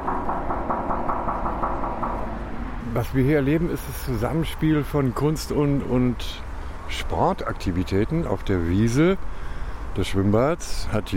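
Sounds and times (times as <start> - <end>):
knocks on a hollow sculpture: 0.0 - 2.8
constant low rumble: 0.0 - 4.4
speech: 3.0 - 9.4, 10.0 - 11.1.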